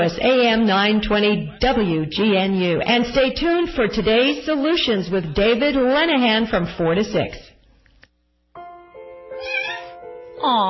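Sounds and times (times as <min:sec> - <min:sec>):
speech: 0:00.0 - 0:07.5, 0:10.4 - 0:10.6
cat meowing: 0:09.4 - 0:10.0.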